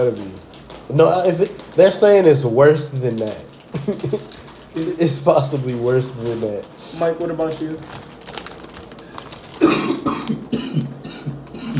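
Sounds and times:
speech: 0:00.0 - 0:00.3, 0:00.9 - 0:08.1
harsh throaty coughs: 0:09.6 - 0:11.7.

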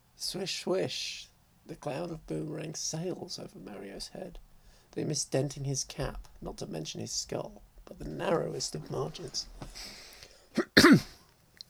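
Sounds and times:
speech: 0:00.2 - 0:10.0, 0:10.6 - 0:11.1
person coughing: 0:10.6 - 0:11.2.

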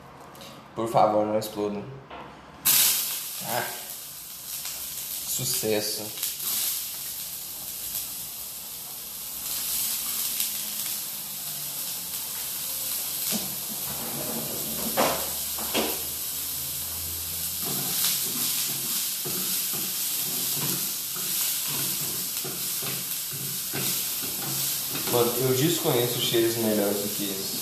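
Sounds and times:
speech: 0:00.8 - 0:02.1, 0:03.5 - 0:03.8, 0:05.4 - 0:06.2, 0:25.4 - 0:27.6
onions sizzling in a hot pan: 0:02.6 - 0:27.6
scraping clatter of onions stirred in a pan: 0:17.6 - 0:25.6.

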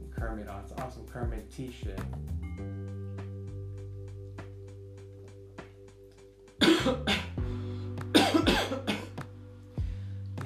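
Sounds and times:
speech: 0:00.3 - 0:02.8
harsh rasping smoker's cough: 0:06.6 - 0:07.4, 0:08.1 - 0:09.2.

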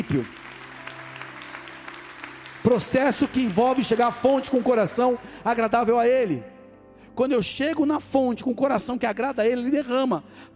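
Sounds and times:
crowd clapping: 0:00.0 - 0:05.9
speech: 0:00.1 - 0:00.4, 0:02.6 - 0:06.5, 0:07.2 - 0:10.5.

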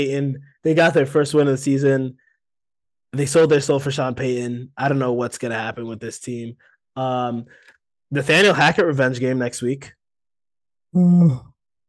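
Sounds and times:
speech: 0:00.0 - 0:02.2, 0:03.1 - 0:10.0, 0:10.9 - 0:11.8
person yawning: 0:10.9 - 0:11.6.

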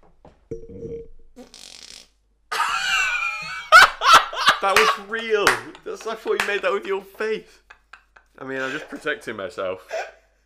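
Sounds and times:
speech: 0:00.5 - 0:01.6, 0:04.6 - 0:07.6, 0:08.4 - 0:10.1
fart: 0:01.4 - 0:02.2
laughter: 0:02.5 - 0:09.4.

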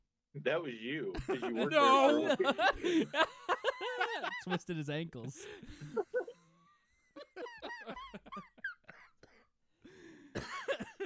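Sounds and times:
speech: 0:00.4 - 0:06.1
laughter: 0:01.1 - 0:08.5
smoker's cough: 0:10.4 - 0:11.0.

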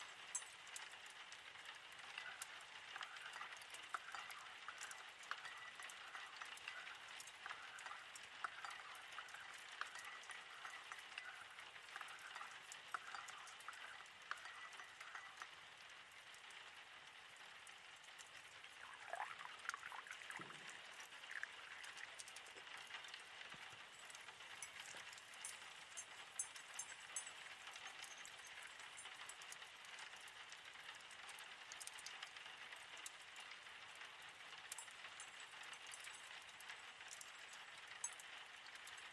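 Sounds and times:
steady rain pattering outside on a rainy night: 0:00.0 - 0:39.1.

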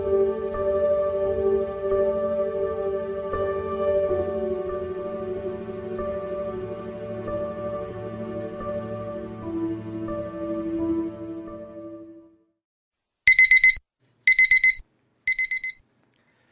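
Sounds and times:
music: 0:00.0 - 0:12.6
alarm clock with shrill electronic beeps: 0:13.3 - 0:15.8.

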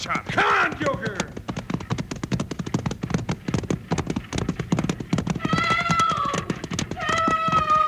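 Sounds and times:
speech: 0:00.0 - 0:00.9
runaway horse team pulling a stagecoach galloping: 0:00.0 - 0:07.8
horse neighing: 0:05.4 - 0:07.8.

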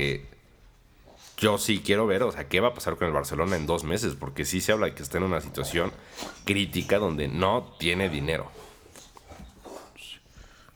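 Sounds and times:
speech: 0:00.0 - 0:00.3, 0:01.4 - 0:08.7
dog snoring: 0:05.0 - 0:10.6.

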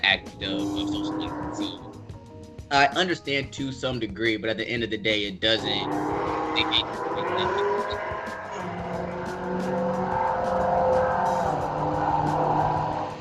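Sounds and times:
cars racing on a nearby interstate: 0:00.0 - 0:02.0, 0:05.4 - 0:13.1
speech: 0:00.0 - 0:02.0, 0:02.7 - 0:08.1
thin high squeals: 0:00.4 - 0:01.9, 0:05.6 - 0:13.1.

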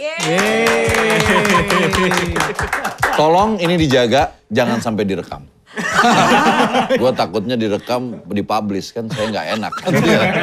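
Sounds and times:
speech: 0:00.0 - 0:10.4
audience applause: 0:00.2 - 0:03.4
laughter: 0:00.4 - 0:03.3, 0:05.8 - 0:07.2, 0:09.1 - 0:10.4.

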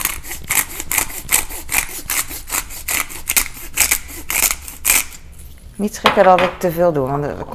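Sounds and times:
pepper mill grinding ordinary pepper: 0:00.0 - 0:05.2
speech: 0:05.8 - 0:07.5.

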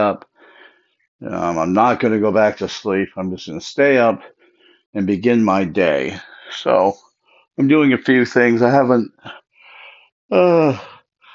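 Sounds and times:
speech: 0:00.0 - 0:00.3, 0:01.2 - 0:07.0, 0:07.6 - 0:09.4, 0:10.3 - 0:10.9
soft breathy sounds: 0:00.3 - 0:01.0, 0:04.2 - 0:04.9, 0:09.3 - 0:10.1
person yawning aloud early in the morning: 0:10.3 - 0:11.0.

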